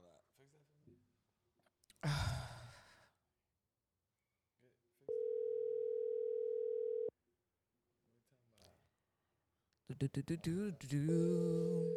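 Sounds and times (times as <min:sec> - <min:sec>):
speech: 0:00.4 - 0:01.2, 0:09.9 - 0:11.9
breathy sigh: 0:02.0 - 0:02.9
phone line ringback tone: 0:05.1 - 0:07.1.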